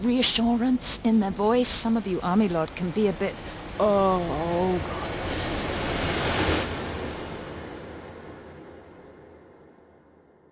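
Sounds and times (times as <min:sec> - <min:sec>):
speech: 0:00.0 - 0:05.4
helicopter flying overhead: 0:00.2 - 0:08.6.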